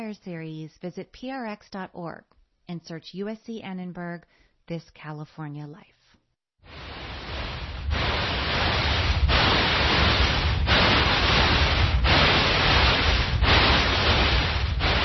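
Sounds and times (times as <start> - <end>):
speech: 0.0 - 6.0
loud static hiss simulating tinnitus noise: 6.7 - 15.0.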